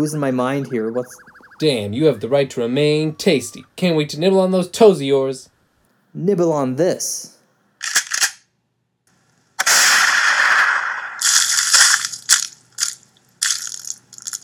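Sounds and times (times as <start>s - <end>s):
speech: 0.0s - 5.5s, 6.1s - 7.4s
video game gunshot: 9.6s - 11.2s
head exploding in a video game: 9.6s - 12.1s.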